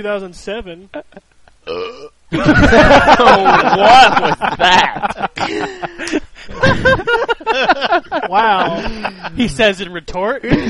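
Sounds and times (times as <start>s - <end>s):
speech: 0.0s - 10.6s
loud burps: 1.6s - 2.2s
laughter: 2.3s - 9.6s.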